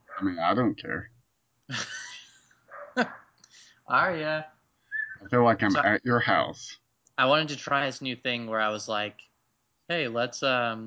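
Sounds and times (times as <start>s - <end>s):
speech: 0.2s - 1.1s, 1.7s - 2.0s, 3.0s - 3.2s, 3.9s - 4.6s, 5.2s - 9.3s, 9.9s - 10.8s
laughter: 1.7s - 2.4s, 5.3s - 9.0s
dog barking excitedly: 2.7s - 3.2s.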